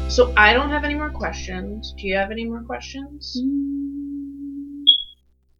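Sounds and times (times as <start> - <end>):
low steady hum: 0.1 - 5.1
speech: 0.2 - 4.1
smoke detector low-battery chirp: 3.6 - 5.1.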